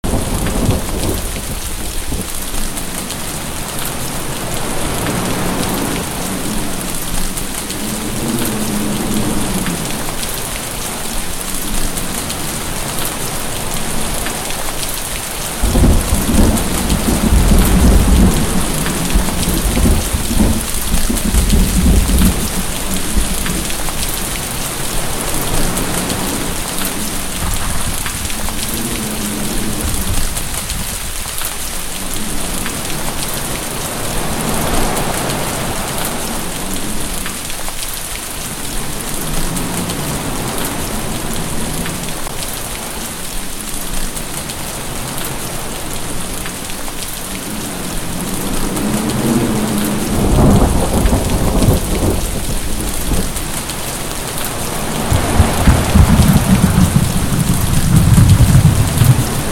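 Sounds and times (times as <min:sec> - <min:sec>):
heavy rain: 0:00.0 - 0:59.5
thunder: 0:15.6 - 0:23.9, 0:48.8 - 0:53.3, 0:54.9 - 0:59.5.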